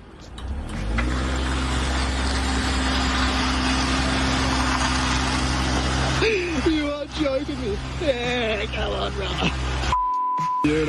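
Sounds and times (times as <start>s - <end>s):
car engine revving with car barely moving: 0.2s - 10.0s
speech: 7.5s - 9.7s.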